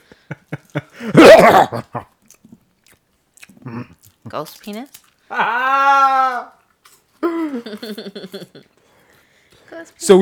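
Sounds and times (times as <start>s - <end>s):
speech: 1.0s - 2.1s, 3.7s - 6.6s, 7.5s - 8.8s, 9.7s - 10.2s
pet chewing and crunching food: 2.2s - 5.3s
laughter: 7.3s - 8.7s.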